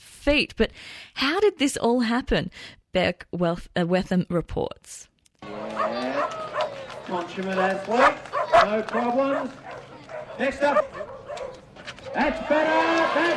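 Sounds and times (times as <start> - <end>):
speech: 0.2 - 6.4, 7.1 - 9.6, 10.4 - 11.0, 12.1 - 13.3
kelpie working dogs barking and yipping at a festival in Western Victoria: 5.6 - 12.3.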